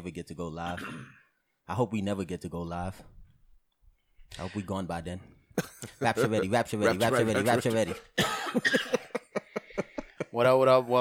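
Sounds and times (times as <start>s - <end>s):
speech: 0.0s - 3.2s, 4.3s - 8.9s, 10.4s - 11.0s
person coughing after drink went down wrong pipe: 0.7s - 1.3s, 5.6s - 6.0s, 6.8s - 9.3s.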